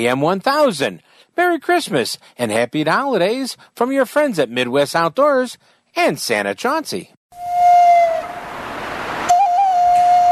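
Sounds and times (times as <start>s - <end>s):
speech: 0.0s - 7.5s
loud flute-like whistle toots: 7.4s - 8.4s, 9.3s - 10.3s
soft rushing noise: 7.5s - 10.3s.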